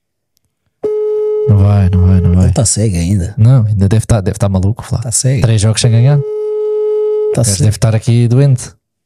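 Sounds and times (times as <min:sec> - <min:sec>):
phone call ringing tone: 0:00.8 - 0:02.7, 0:06.0 - 0:07.7
speech: 0:01.6 - 0:06.4, 0:07.3 - 0:08.8.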